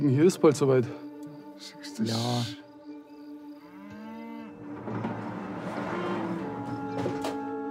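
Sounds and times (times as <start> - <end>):
speech: 0.0 - 2.6
cows mooing in long drawn-out calls: 3.6 - 7.6.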